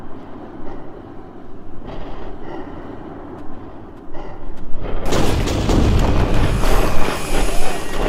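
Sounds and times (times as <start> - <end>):
dense roaring wash of debris-like noise: 0.0 - 8.0
low restless rumble: 0.0 - 8.0
violent explosion: 4.9 - 8.0.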